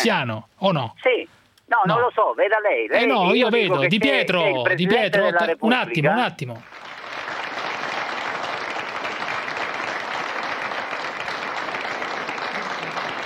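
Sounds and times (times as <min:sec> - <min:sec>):
speech: 0:00.0 - 0:06.8
audience applause: 0:06.6 - 0:13.2.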